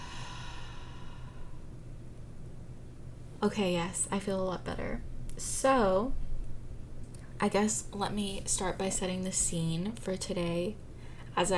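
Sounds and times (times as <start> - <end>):
deep slow exhale during a guided breathing exercise: 0.0 - 1.7
faint low noise: 0.0 - 11.5
speech: 3.4 - 6.2, 7.4 - 10.8, 11.4 - 11.5.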